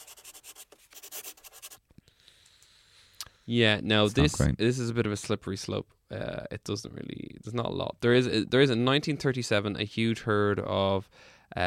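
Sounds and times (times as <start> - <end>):
pen scratching on paper while writing: 0.0 - 1.8
speech: 3.5 - 11.6.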